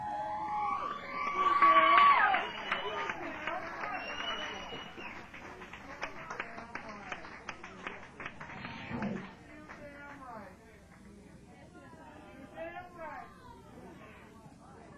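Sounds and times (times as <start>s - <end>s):
live show audience screaming and cheering: 0.0s - 5.2s
live show audience clapping: 0.6s - 11.2s.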